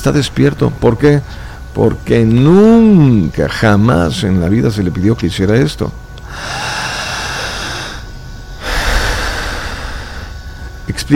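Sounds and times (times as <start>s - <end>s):
speech: 0.0s - 6.6s, 10.9s - 11.1s
deep breathing through the mouth during a clinical hypnosis demonstration: 1.2s - 1.7s, 6.2s - 10.9s.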